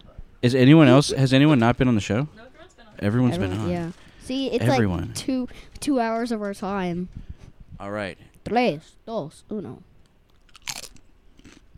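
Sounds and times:
speech: 0:00.4 - 0:07.2, 0:07.8 - 0:09.9
person crunching while biting a chip: 0:10.3 - 0:11.7.

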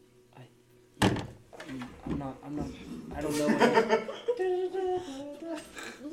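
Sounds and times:
door thudding shut with a heavy knock: 0:01.0 - 0:01.4
speech: 0:01.7 - 0:06.1
people chuckling: 0:03.3 - 0:05.3.

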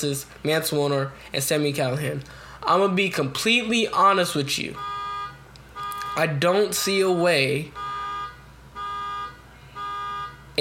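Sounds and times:
speech: 0:00.0 - 0:04.9, 0:06.2 - 0:07.9
car alarm going off outside a house: 0:04.8 - 0:06.3, 0:07.7 - 0:10.5.

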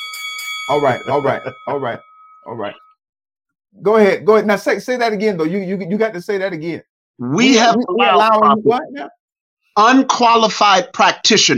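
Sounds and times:
bell ringing with a bright metallic tone: 0:00.0 - 0:03.0
speech: 0:00.7 - 0:02.8, 0:03.7 - 0:09.2, 0:09.8 - 0:11.5.

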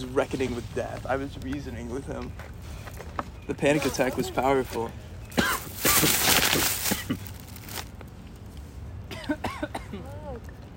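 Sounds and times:
speech: 0:00.0 - 0:02.8, 0:03.5 - 0:07.3
harsh coughing: 0:05.3 - 0:06.2, 0:06.8 - 0:07.3, 0:09.1 - 0:10.0.

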